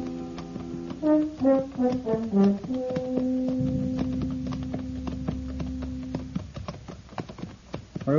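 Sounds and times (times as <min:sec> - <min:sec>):
horses' hooves clip-clopping on a hard main street: 0:00.0 - 0:08.1
melodic phrase settling into a sustained low tone: 0:03.6 - 0:06.3.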